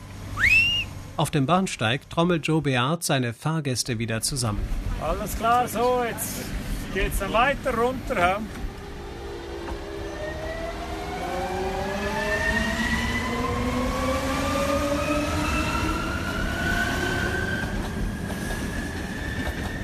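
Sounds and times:
train rolling downhill rumble: 0:00.0 - 0:02.6, 0:03.9 - 0:19.8
speech: 0:01.2 - 0:08.6
train wheels squealing after a tight curve: 0:09.8 - 0:10.7, 0:15.0 - 0:19.8.

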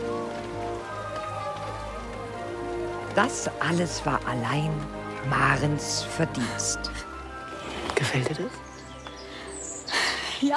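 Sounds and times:
rain falling on a surface: 0:00.0 - 0:10.5
speech: 0:03.2 - 0:07.1, 0:08.0 - 0:08.6, 0:10.4 - 0:10.5.

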